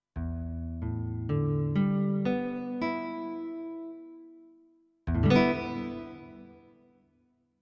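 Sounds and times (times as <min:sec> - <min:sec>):
nylon guitar: 0:00.2 - 0:04.3, 0:05.1 - 0:06.9.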